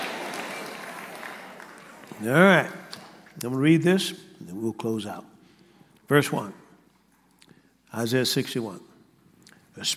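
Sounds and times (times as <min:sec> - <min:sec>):
room full of people clapping: 0:00.0 - 0:02.5
speech: 0:02.1 - 0:02.8, 0:03.4 - 0:05.3, 0:06.1 - 0:06.6, 0:07.9 - 0:08.9, 0:09.8 - 0:09.9.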